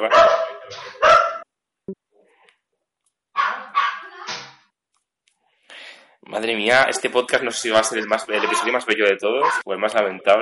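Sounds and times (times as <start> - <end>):
speech: 0.0 - 0.8, 6.4 - 10.4
police dog barking: 0.0 - 1.5, 3.4 - 4.1, 9.4 - 9.6.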